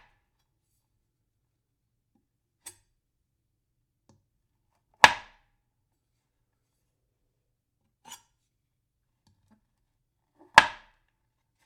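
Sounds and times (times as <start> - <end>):
knife chopping on wood: 5.1 - 5.4, 10.6 - 11.0.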